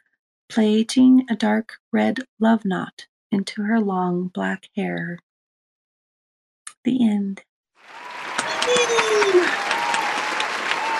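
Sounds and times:
speech: 0:00.5 - 0:05.2, 0:06.8 - 0:08.1
audience clapping after poem reading: 0:07.8 - 0:10.9.

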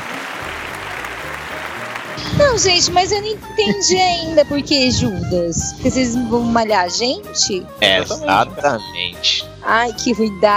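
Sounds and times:
recorded electronic applause sound effect with cheering: 0:00.0 - 0:02.9
speech: 0:02.2 - 0:10.5.

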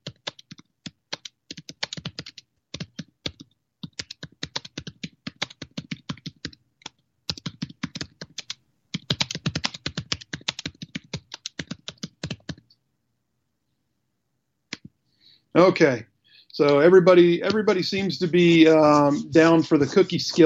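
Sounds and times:
rapid typing on a computer keyboard: 0:00.0 - 0:12.7
speech: 0:15.6 - 0:20.4.

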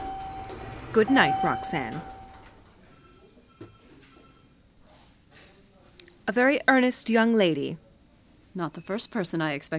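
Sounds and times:
elevator doors sliding open and closed: 0:00.0 - 0:02.6
speech: 0:00.9 - 0:02.1, 0:06.3 - 0:07.8, 0:08.5 - 0:09.7.

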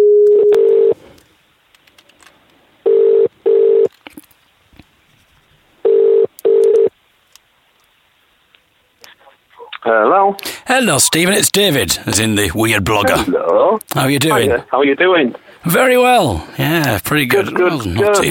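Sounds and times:
telephone ringing tone through an earpiece: 0:00.0 - 0:01.0, 0:02.9 - 0:03.9, 0:05.8 - 0:06.9
speech: 0:10.4 - 0:18.2.

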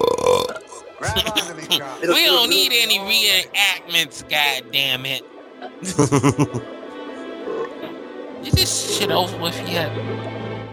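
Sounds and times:
children burping: 0:00.0 - 0:02.4
laughter: 0:01.0 - 0:06.8
speech: 0:01.2 - 0:06.7, 0:08.4 - 0:10.3.

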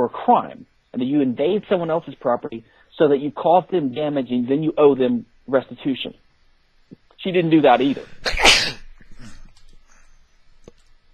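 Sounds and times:
speech: 0:00.0 - 0:06.2, 0:07.2 - 0:08.7
person sneezing: 0:07.9 - 0:09.6.

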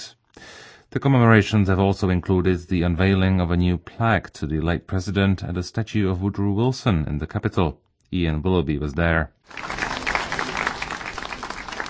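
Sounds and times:
speech: 0:00.9 - 0:09.8
crowd applauding at the unveiling of a commemorative plaque: 0:09.5 - 0:11.8.

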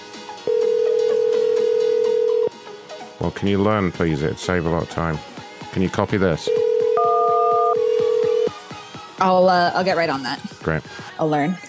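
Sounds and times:
telephone dial tone: 0:00.5 - 0:02.5, 0:06.5 - 0:08.5
speech: 0:03.2 - 0:06.6, 0:09.2 - 0:11.6.

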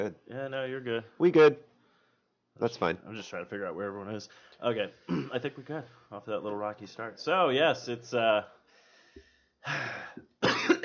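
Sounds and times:
speech: 0:00.0 - 0:01.7, 0:02.6 - 0:08.6, 0:09.2 - 0:10.3
person coughing after swallowing a gnat: 0:05.1 - 0:05.4, 0:10.4 - 0:10.8.

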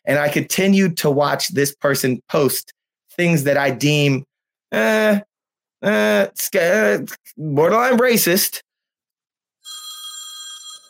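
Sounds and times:
speech: 0:00.0 - 0:08.6
phone ringing with an incoming call: 0:09.6 - 0:10.8.

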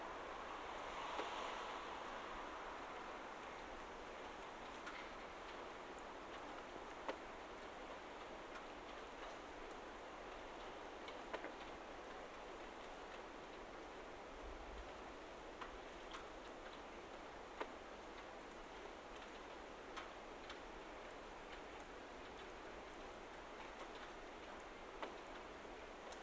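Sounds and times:
car passing in the rain: 0:00.0 - 0:04.8
steady rain falling around someone walking: 0:00.0 - 0:26.2.

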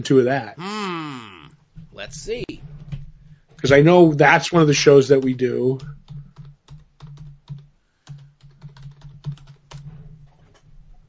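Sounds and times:
speech: 0:00.0 - 0:00.8, 0:02.0 - 0:02.7, 0:03.6 - 0:06.0
typing on a computer keyboard: 0:05.1 - 0:10.0.

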